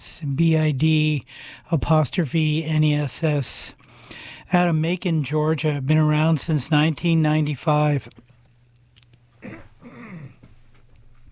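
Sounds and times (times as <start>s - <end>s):
speech: 0.0s - 3.8s, 4.5s - 8.2s
low steady hum: 0.0s - 11.2s
throat clearing: 9.4s - 10.5s.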